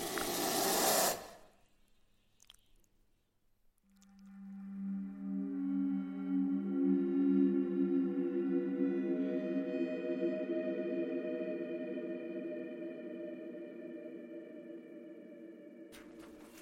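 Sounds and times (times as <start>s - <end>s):
sharp hiss of angry snakes: 0.0s - 1.5s
low wavering moan-like tone: 4.2s - 15.8s.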